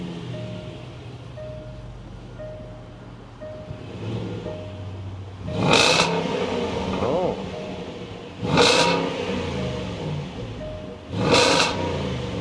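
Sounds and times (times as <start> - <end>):
supercharged 2014 Range Rover Sport engine rumbling and revving: 0.0 - 12.3
soft repeating chime tone: 0.4 - 6.2, 7.4 - 8.4, 9.0 - 11.3.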